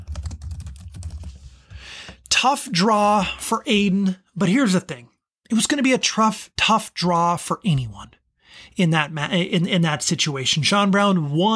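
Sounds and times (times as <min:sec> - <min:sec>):
typing on a computer keyboard: 0:00.0 - 0:01.4
speech: 0:02.0 - 0:11.5.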